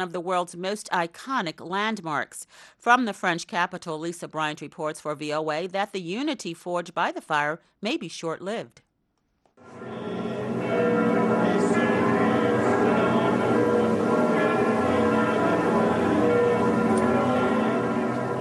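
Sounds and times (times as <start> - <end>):
speech: 0.0 - 8.8
church bells ringing together in a dense continuous peal: 9.6 - 18.4.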